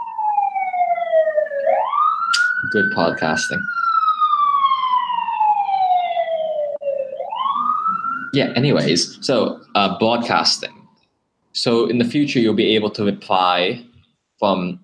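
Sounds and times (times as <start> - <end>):
fire truck siren wailing while responding to a fire: 0.0 - 11.0
speech: 2.7 - 3.8, 8.4 - 10.8, 11.6 - 14.8.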